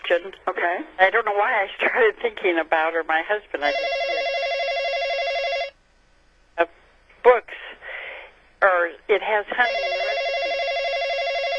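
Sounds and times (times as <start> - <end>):
speech: 0.1 - 4.0, 6.6 - 7.5, 9.1 - 10.0
telephone bell ringing: 3.6 - 5.8, 9.6 - 11.5.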